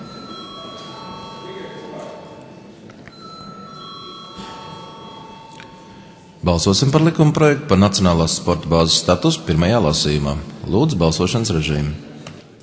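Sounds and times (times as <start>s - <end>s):
parliament chamber bell ringing before a vote: 0.0s - 7.1s
low murmur of voices: 0.0s - 12.6s
speech: 6.4s - 12.1s.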